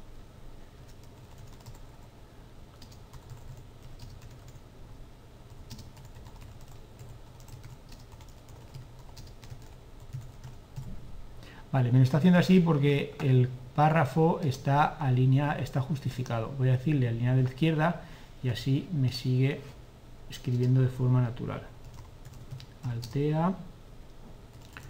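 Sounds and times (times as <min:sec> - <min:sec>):
low hum: 0:00.0 - 0:24.8
rapid typing on a computer keyboard: 0:00.9 - 0:02.0, 0:02.8 - 0:04.6, 0:05.6 - 0:10.9, 0:21.8 - 0:23.2, 0:24.5 - 0:24.8
speech: 0:11.7 - 0:21.7, 0:22.9 - 0:23.7.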